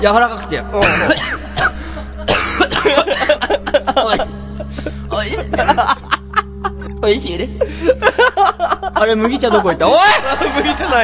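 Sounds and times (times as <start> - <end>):
speech: 0.0 - 1.4, 3.9 - 6.2, 7.0 - 11.0
person coughing after choking on tender meat during a curry meal: 0.8 - 5.7
laughter: 2.5 - 11.0.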